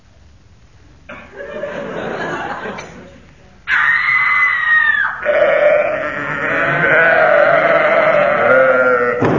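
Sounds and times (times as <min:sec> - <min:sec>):
laughter: 0:01.1 - 0:03.3
woman screaming in a comic sound effect: 0:03.7 - 0:09.1
sheep bleating in a comic sound effect: 0:05.2 - 0:09.2.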